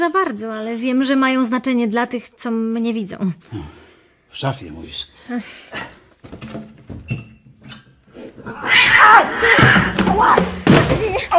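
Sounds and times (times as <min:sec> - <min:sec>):
speech: 0:00.0 - 0:06.6, 0:08.5 - 0:11.3
cat yowling loudly and angrily while being held: 0:08.5 - 0:09.9.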